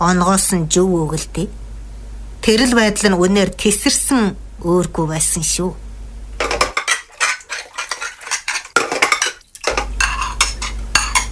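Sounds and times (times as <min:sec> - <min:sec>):
speech: 0:00.0 - 0:01.6, 0:02.4 - 0:05.8
pots and pans clanging against each other in a kitchen: 0:06.4 - 0:11.3.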